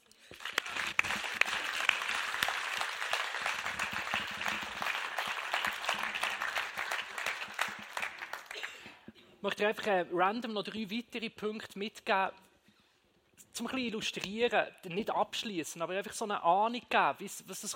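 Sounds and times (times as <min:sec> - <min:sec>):
audience applause: 0:00.0 - 0:08.8
speech: 0:09.4 - 0:12.4, 0:13.6 - 0:17.7.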